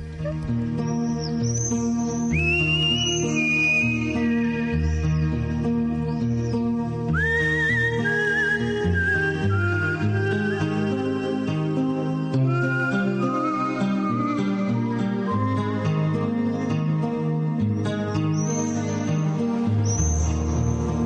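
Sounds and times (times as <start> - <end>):
person whistling a melody: 0.0 - 5.4, 7.1 - 16.8
instrumental music backing: 0.0 - 21.0.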